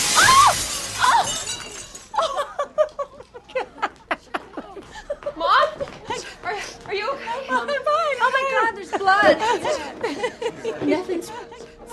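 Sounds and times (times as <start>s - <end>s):
glass table shattering as a woman falls through it: 0.0s - 2.2s
people chuckling: 2.2s - 6.4s, 7.4s - 11.8s.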